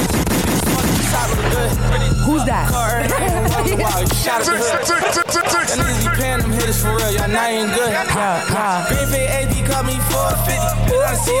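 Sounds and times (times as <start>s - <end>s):
rapid gunfire sound effects: 0.0s - 1.7s
laughter: 1.0s - 11.3s
speech: 2.5s - 11.3s.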